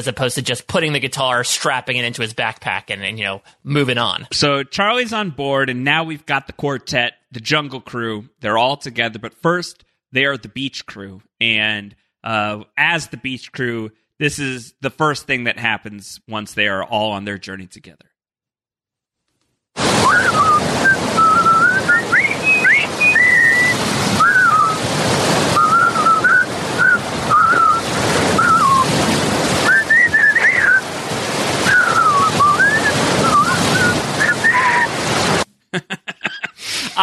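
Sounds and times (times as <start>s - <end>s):
speech: 0.0s - 18.1s, 19.8s - 21.1s, 35.7s - 36.0s
wind on a beach: 19.8s - 35.4s
surf rushing on a beach: 19.8s - 35.5s
four people whistling a jaunty marching tune while walking on a beach: 20.0s - 24.8s, 25.5s - 28.9s, 29.6s - 30.8s, 31.6s - 34.9s
laughter: 35.7s - 37.0s.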